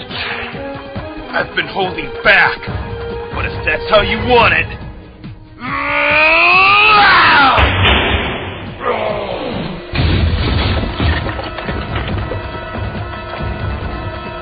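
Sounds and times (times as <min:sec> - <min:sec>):
speech: 0:01.3 - 0:04.8
person giving a rising strained yell: 0:05.6 - 0:07.6
body crashing through apartment building wall: 0:07.5 - 0:08.8, 0:09.9 - 0:12.3
loud impact: 0:07.5 - 0:08.8, 0:09.9 - 0:12.3
long rumble of falling debris and rubble: 0:09.9 - 0:14.0.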